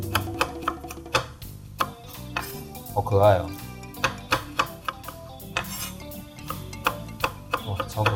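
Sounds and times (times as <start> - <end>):
knife roll-cutting a fibrous vegetable on a board: 0.0 - 2.8, 4.0 - 8.1
speech: 3.0 - 3.6.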